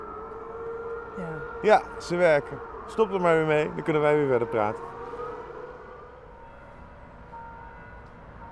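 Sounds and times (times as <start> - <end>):
civil defense siren wailing in monthly test: 0.0 - 8.5
speech: 1.2 - 5.0.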